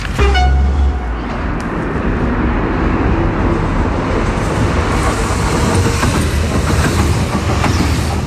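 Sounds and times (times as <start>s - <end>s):
train rumbling past on rails on a hot day: 0.0s - 8.2s
brief horn-like tone: 0.2s - 1.2s.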